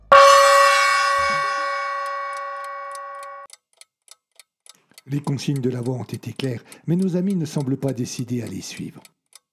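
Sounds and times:
bright bell-like chime: 0:00.0 - 0:03.5
clock ticking for a countdown: 0:00.0 - 0:09.5
speech: 0:05.1 - 0:09.2.

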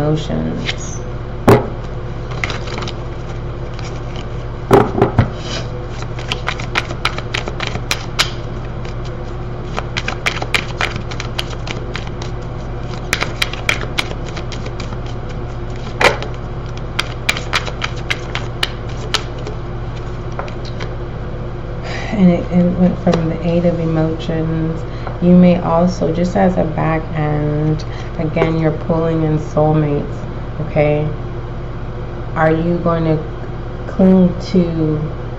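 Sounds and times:
low steady hum: 0:00.0 - 0:35.3
speech: 0:00.1 - 0:01.0, 0:22.2 - 0:30.2, 0:30.8 - 0:31.2, 0:32.4 - 0:33.3, 0:34.0 - 0:35.2
deck of tarot cards being shuffled: 0:02.3 - 0:05.2, 0:05.9 - 0:20.9.

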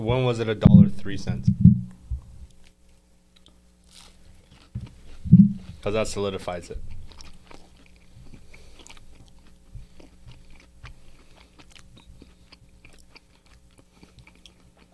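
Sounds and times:
speech: 0:00.0 - 0:01.7, 0:05.8 - 0:06.9
faint steady hum: 0:00.0 - 0:14.9
person chewing food noisily: 0:03.4 - 0:05.9, 0:06.8 - 0:14.9.

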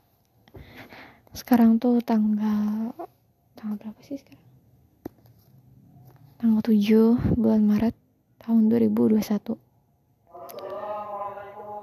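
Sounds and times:
speech: 0:01.4 - 0:04.5, 0:06.4 - 0:09.6
amplified voice chanting from a nearby mosque loudspeaker: 0:10.3 - 0:11.8.

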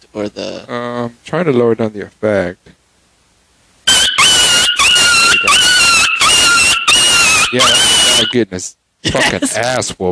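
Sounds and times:
speech: 0:00.1 - 0:02.8, 0:07.5 - 0:10.0
dog yelping with shrill high-pitched cries: 0:03.9 - 0:08.3.

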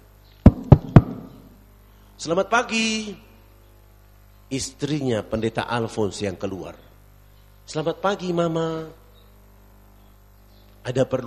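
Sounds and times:
knocking on a wooden house door: 0:00.5 - 0:01.4
speech: 0:02.2 - 0:03.3, 0:04.5 - 0:06.9, 0:07.7 - 0:09.0, 0:10.8 - 0:11.2.

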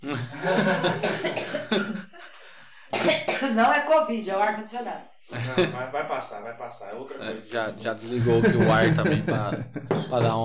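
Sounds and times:
person coughing hoarsely: 0:00.0 - 0:02.0, 0:02.9 - 0:03.6
laughter: 0:00.0 - 0:02.4, 0:05.3 - 0:06.0, 0:08.1 - 0:10.4
speech: 0:03.6 - 0:10.4.

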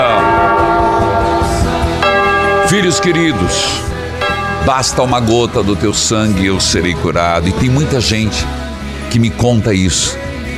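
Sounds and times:
church bell rung by the sacristan: 0:00.0 - 0:07.1
speech: 0:02.7 - 0:04.0, 0:04.6 - 0:10.3.

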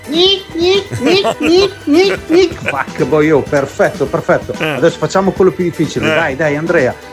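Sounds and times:
speech: 0:00.2 - 0:07.1
child's voice imitating a sawfish with sawing vocal bursts: 0:00.6 - 0:02.8
laughter: 0:00.9 - 0:03.3, 0:04.6 - 0:04.9, 0:06.0 - 0:06.3.

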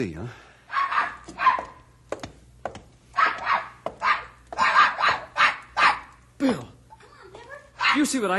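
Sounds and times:
speech: 0:00.0 - 0:00.4, 0:06.4 - 0:06.7, 0:07.9 - 0:08.3
dog barking: 0:00.7 - 0:01.8, 0:03.2 - 0:06.2, 0:07.8 - 0:08.2.

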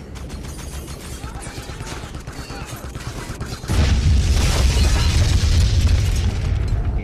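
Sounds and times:
explosion: 0:03.7 - 0:07.0.

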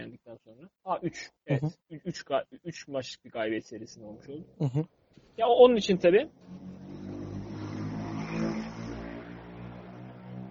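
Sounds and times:
speech: 0:00.0 - 0:06.7
car passing by outside: 0:05.8 - 0:10.5
steady humming engine drone: 0:06.3 - 0:10.5.

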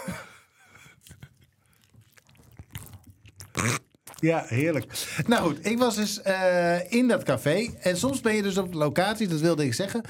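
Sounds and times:
person chewing a mouthful of banana: 0:00.6 - 0:05.0
speech: 0:03.6 - 0:10.0.

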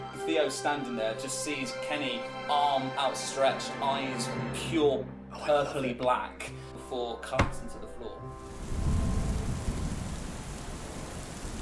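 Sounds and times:
speech: 0:00.3 - 0:08.4
deep thunder rumbling low and loud: 0:08.4 - 0:11.5
heavy rain pouring in a thunderstorm: 0:08.4 - 0:11.5.

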